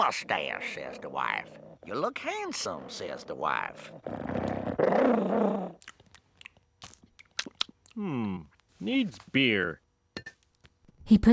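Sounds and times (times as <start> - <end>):
dog snarling and growling while attacking: 0.0 - 5.8
speech: 0.0 - 5.9, 8.0 - 9.8, 11.1 - 11.3
dog snapping and crunching bites: 5.8 - 8.7.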